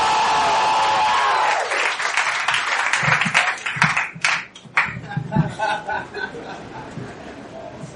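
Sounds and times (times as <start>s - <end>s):
audience at a live event applauding and cheering: 0.0s - 5.1s
laughter: 4.8s - 7.8s.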